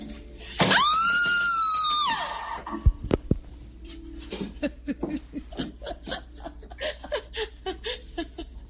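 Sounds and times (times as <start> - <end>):
woman screaming in a haunted hallway in Georgia: 0.7 - 2.6
breathy rhythmic laughter: 4.3 - 8.6.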